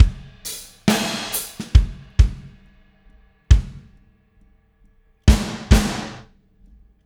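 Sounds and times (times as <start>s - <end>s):
indie rock drum fill: 0.0s - 2.6s, 3.5s - 3.9s, 5.3s - 6.3s.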